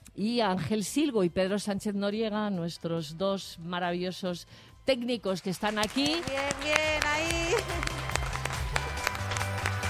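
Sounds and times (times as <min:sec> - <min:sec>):
speech: 0:00.2 - 0:07.8
studio audience applause: 0:05.8 - 0:09.8.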